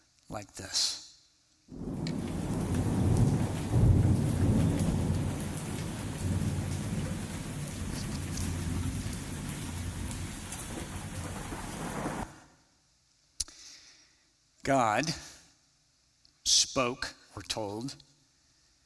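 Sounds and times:
speech: 0.3 - 1.0, 14.7 - 15.3, 16.8 - 18.1
deep rolling rumble of thunder: 1.7 - 12.4
steady heavy rain in a thunderstorm: 1.7 - 12.4.

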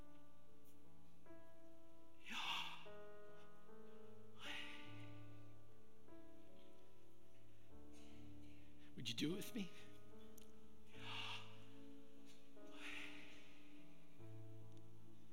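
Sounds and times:
soft sustained music: 0.0 - 15.3
deep breathing: 2.1 - 9.0, 9.7 - 14.6
speech: 9.0 - 9.9.

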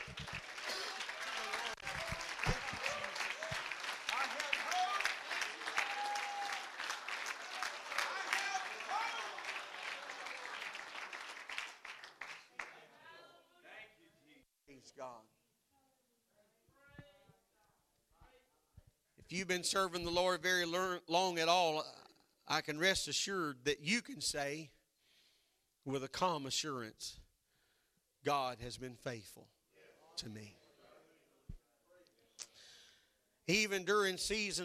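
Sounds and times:
large group clapping hands: 0.0 - 13.0
speech: 19.3 - 24.8, 25.8 - 27.2, 28.2 - 29.6, 30.2 - 30.6, 33.5 - 34.6.

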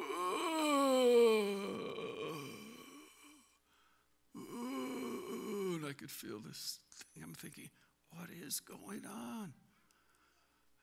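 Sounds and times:
person groaning while praying in tongues: 0.0 - 3.4, 4.4 - 5.8
speech: 6.0 - 9.7.

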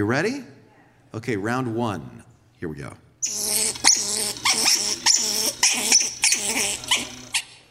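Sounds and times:
speech: 0.0 - 3.5
angry squirrel scolding with harsh raspy chattering barks: 3.2 - 7.5.

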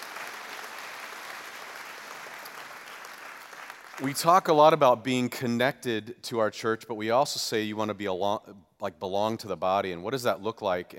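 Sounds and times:
congregation applauding in a large room: 0.0 - 4.4
speech: 4.0 - 10.9.

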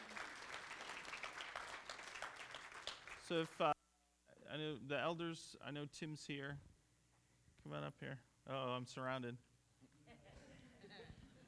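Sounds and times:
church audience clapping: 0.0 - 3.8
speech: 3.3 - 3.8, 4.5 - 6.7, 7.6 - 9.5.

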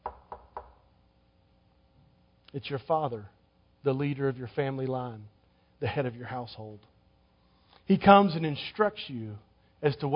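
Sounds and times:
soft knocks on a door: 0.0 - 0.8
speech: 2.5 - 6.9, 7.9 - 10.1.

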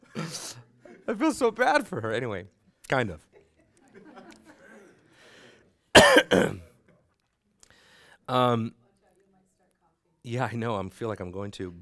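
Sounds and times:
speech: 0.2 - 3.3, 6.2 - 6.6, 8.3 - 8.8, 10.2 - 11.8
person coughing: 6.0 - 6.7.

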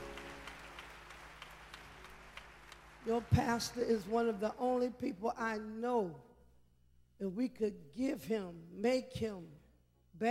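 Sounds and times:
audience clapping: 0.0 - 4.2
speech: 3.0 - 6.3, 7.2 - 9.6.

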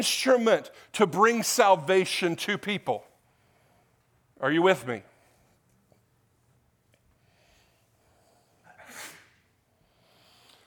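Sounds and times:
speech: 0.0 - 3.1, 4.4 - 5.1
sneeze from a person in the audience during a sermon: 8.7 - 9.5.

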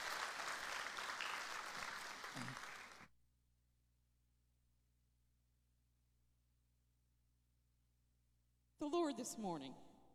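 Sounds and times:
large audience at a church service clapping hands in praise: 0.0 - 3.1
speech: 2.4 - 2.7, 8.8 - 9.9.

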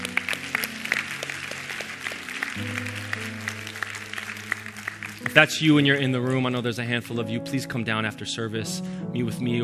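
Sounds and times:
church audience applauding during a service: 0.0 - 6.8
speech: 2.6 - 3.0, 5.3 - 9.6.

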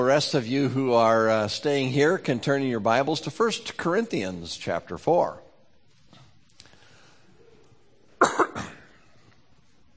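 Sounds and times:
speech: 0.0 - 5.4
person clearing throat: 8.2 - 9.0
person coughing: 8.2 - 9.1.

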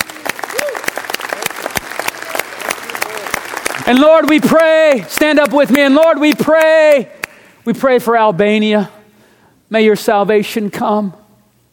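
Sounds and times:
voices calling out and cheering: 0.0 - 3.4
crowd applause: 0.0 - 5.5
speech: 3.9 - 9.0, 9.7 - 11.2.

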